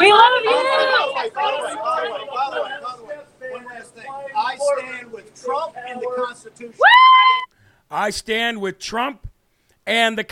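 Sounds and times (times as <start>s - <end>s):
noisy crowd chattering and yelling: 0.0s - 3.6s
speech: 6.4s - 7.3s, 7.9s - 9.3s, 9.9s - 10.3s
young woman screaming high-pitched: 6.8s - 7.5s.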